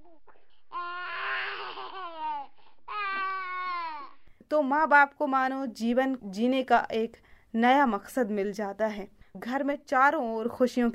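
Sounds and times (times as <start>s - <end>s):
baby squealing and cooing happily: 0.0s - 4.2s
speech: 4.5s - 10.9s.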